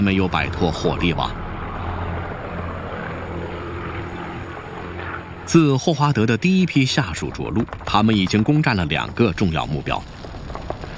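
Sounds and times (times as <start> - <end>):
Spitfire fighter plane engines droning: 0.0 - 8.4
speech: 0.1 - 1.4, 5.5 - 10.2.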